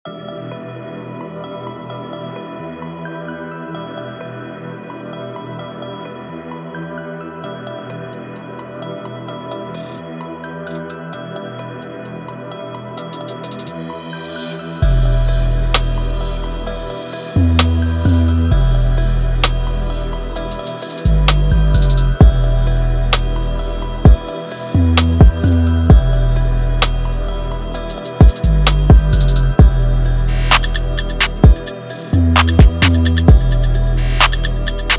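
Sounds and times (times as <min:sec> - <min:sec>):
trap beat: 0:08.4 - 0:34.9.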